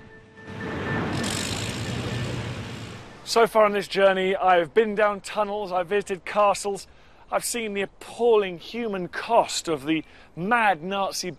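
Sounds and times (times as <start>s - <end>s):
digger engine humming: 0.0s - 3.5s
speech: 3.3s - 11.3s.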